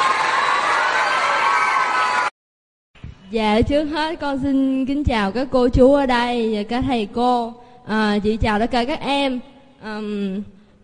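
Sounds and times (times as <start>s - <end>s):
children cheering and clapping: 0.0s - 2.4s
speech: 3.3s - 10.6s.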